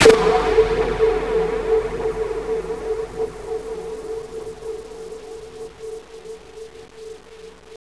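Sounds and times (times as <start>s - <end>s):
fear music ending: 0.0s - 6.3s.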